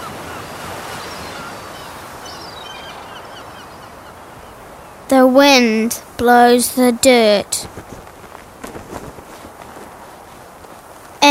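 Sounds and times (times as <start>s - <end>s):
faint bird calls: 0.0s - 5.1s
sea waves washing onto a shore: 0.0s - 11.3s
speech: 5.2s - 8.0s.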